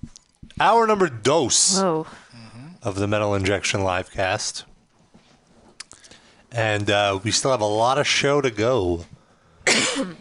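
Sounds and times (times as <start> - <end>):
speech: 0.6 - 2.2, 2.8 - 4.7, 6.5 - 9.2, 10.0 - 10.1
loud harsh raspy cough: 9.6 - 10.1.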